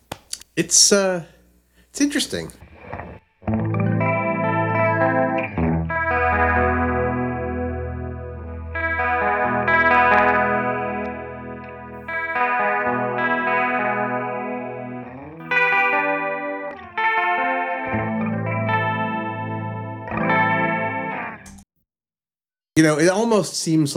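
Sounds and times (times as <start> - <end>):
speech: 0.6 - 1.4, 2.0 - 2.6, 22.8 - 23.9
electric guitar chords through a vintage digital chorus unit: 2.6 - 21.6.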